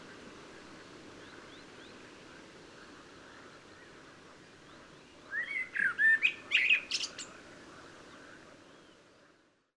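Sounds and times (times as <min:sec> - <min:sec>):
background hiss: 0:00.0 - 0:09.7
common blackbird Turdus merula singing: 0:04.9 - 0:07.3.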